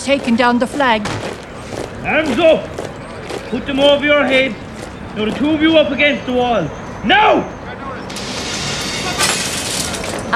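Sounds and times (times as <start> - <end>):
speech: 0.0 - 1.3, 2.0 - 2.8, 3.5 - 4.6, 5.2 - 7.6
glass windows being smashed by hooligans on Easter day: 8.1 - 10.3
steady roar of breaking and clatter: 8.2 - 10.3.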